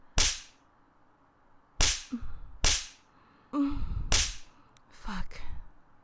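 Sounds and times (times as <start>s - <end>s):
hand spanking slaps on skin: 0.2s - 0.6s, 1.8s - 3.0s, 4.1s - 4.5s.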